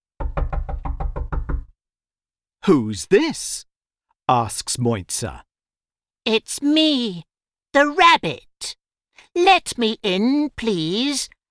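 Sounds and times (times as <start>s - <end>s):
firm knocking on a wooden door: 0.2s - 1.7s
speech: 2.6s - 3.7s, 4.3s - 5.5s, 6.3s - 8.8s, 9.4s - 11.4s.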